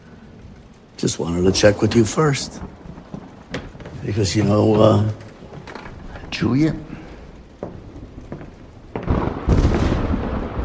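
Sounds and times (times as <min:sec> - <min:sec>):
rain-like hiss: 0:00.0 - 0:10.6
thunder rumbling: 0:00.0 - 0:10.6
speech: 0:01.0 - 0:02.8, 0:04.0 - 0:05.2, 0:06.4 - 0:06.9.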